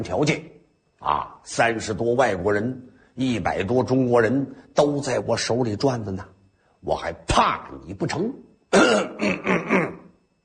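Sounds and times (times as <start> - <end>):
speech: 0.0 - 9.8
man clearing his throat: 8.7 - 10.1.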